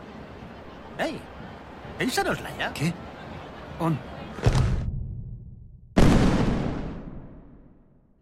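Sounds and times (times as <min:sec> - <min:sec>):
speech: 0:01.0 - 0:03.1, 0:03.8 - 0:04.6
firework thunder-blasts signalling the start of a fireworks display: 0:06.0 - 0:07.7.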